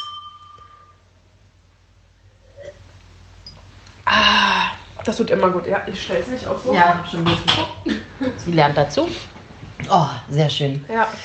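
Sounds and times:
glasses of sparkling wine clinking in a toast: 0.0 - 1.0
low steady hum: 0.0 - 11.2
speech: 5.0 - 9.3, 9.9 - 11.2.

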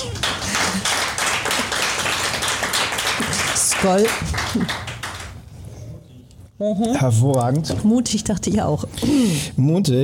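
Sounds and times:
crowd applauding: 0.0 - 5.4
speech: 3.8 - 4.8, 6.6 - 10.0.

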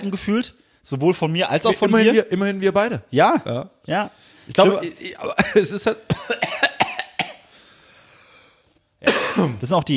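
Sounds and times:
speech: 0.0 - 6.7, 9.0 - 9.9
person coughing: 4.9 - 7.5, 9.0 - 9.6.

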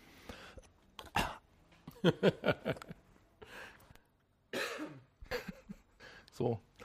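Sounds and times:
person clearing throat: 1.0 - 1.4, 4.6 - 5.1
person coughing: 1.0 - 1.4, 4.5 - 5.5
speech: 2.0 - 3.0, 6.4 - 6.7.

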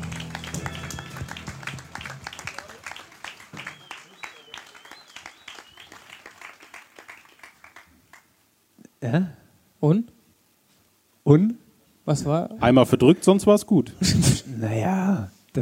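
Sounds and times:
audience applause: 0.0 - 8.3
speech: 9.0 - 10.2, 11.3 - 15.6.

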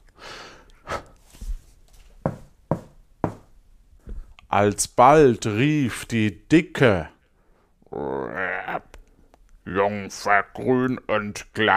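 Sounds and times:
sharp knocking on a door: 2.2 - 3.5
speech: 4.5 - 7.2, 9.7 - 11.7.

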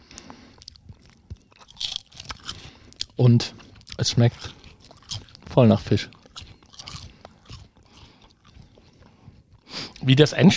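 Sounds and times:
biting and chewing a thin crispy seaweed snack from Thailand: 0.5 - 8.7
speech: 3.2 - 4.6, 5.6 - 6.2, 10.1 - 10.5.

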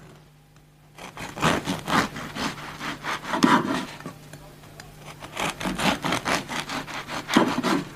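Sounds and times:
knife sawing through a crusty loaf of bread: 1.0 - 4.1, 5.0 - 7.9.

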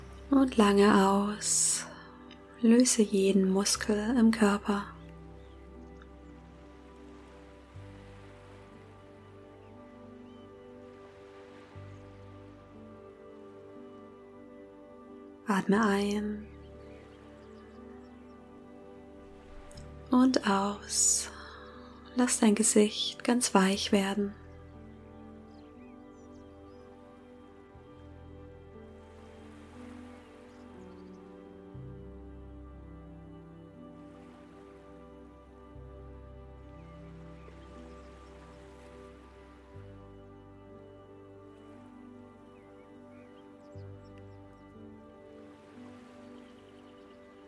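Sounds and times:
sustained ambient music tones: 0.0 - 47.4
speech: 0.3 - 1.9, 2.6 - 5.0, 15.6 - 16.5, 20.1 - 21.4, 22.2 - 24.4
lake waves lapping at shore: 3.6 - 13.8, 16.4 - 22.1, 28.8 - 31.6, 33.9 - 35.6, 36.6 - 40.1, 40.8 - 47.4.

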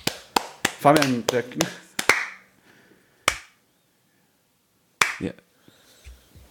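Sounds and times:
sharp hand claps given as applause: 0.0 - 2.5, 3.3 - 3.6, 5.0 - 5.3
speech: 0.8 - 1.9, 5.2 - 5.5.

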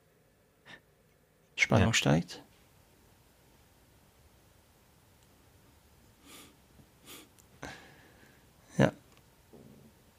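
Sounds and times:
speech: 1.7 - 2.4
man breathing heavily: 6.2 - 8.5.

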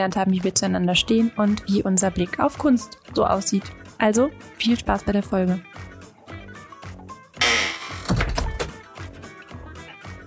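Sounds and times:
speech: 0.0 - 5.9
steady rhythmic music bed: 0.0 - 10.2
door opening with a mechanical rattle and thudding shut: 7.4 - 8.8.

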